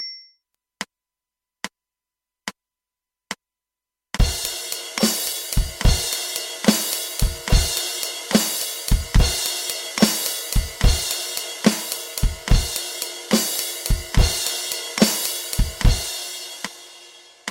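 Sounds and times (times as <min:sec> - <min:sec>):
rhythm in 12/8 time: 0:04.2 - 0:16.1.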